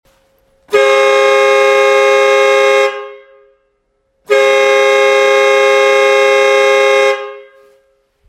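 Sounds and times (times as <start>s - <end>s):
24V two-tone vacuum fanfare horn with compressor 295mm: 0.7s - 8.1s.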